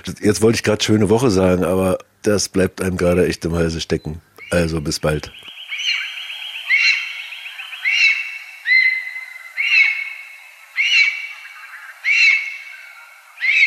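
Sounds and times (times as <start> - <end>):
speech: 0.0 - 5.5
lesser spotted eagle calling: 3.9 - 13.6.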